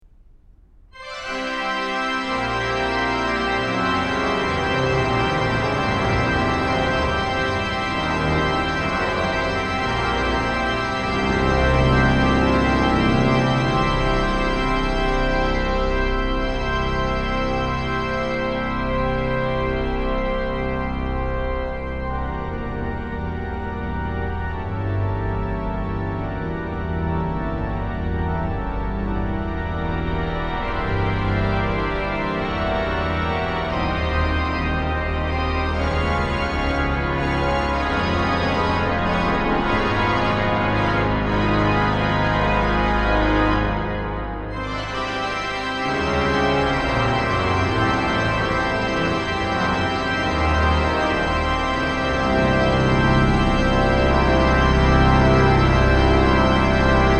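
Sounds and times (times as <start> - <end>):
pipe organ improvisation: 1.0 - 57.1.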